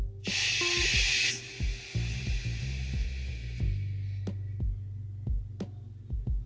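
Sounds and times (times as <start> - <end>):
low thumps and throbbing: 0.0 - 6.4
shushing hiss to soothe a child to sleep: 0.2 - 4.3.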